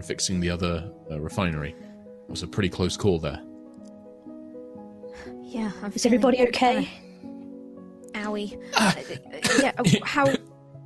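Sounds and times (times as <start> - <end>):
speech: 0.0 - 3.5, 5.2 - 7.0, 8.2 - 10.4
person imitating a character coughing and spluttering: 8.7 - 10.5.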